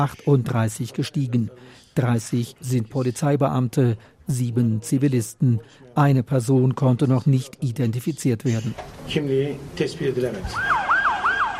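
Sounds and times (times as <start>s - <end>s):
speech: 0.0s - 10.8s
street noise: 8.8s - 11.5s
ambulance siren yelping: 10.5s - 11.5s.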